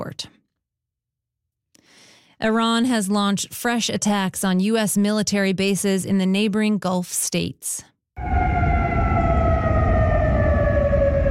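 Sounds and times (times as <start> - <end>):
speech: 0.0 - 0.4, 2.4 - 8.6
air raid warning siren wailing outdoors: 8.2 - 11.3.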